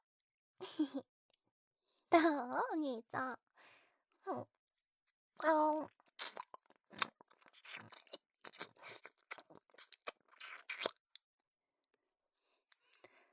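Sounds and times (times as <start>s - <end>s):
speech: 0.7s - 1.1s, 2.1s - 4.6s, 5.4s - 6.3s
person chewing cake: 5.8s - 11.2s.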